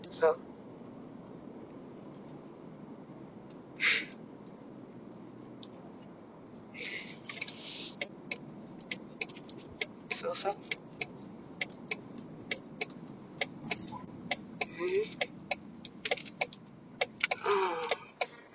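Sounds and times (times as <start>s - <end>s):
people talking: 0.0s - 0.4s, 6.8s - 8.0s, 10.1s - 10.8s, 13.4s - 15.3s, 17.2s - 18.5s
car road rumble on a city street in Los Angeles: 0.0s - 18.5s
sharp ticking clicks: 7.3s - 18.5s.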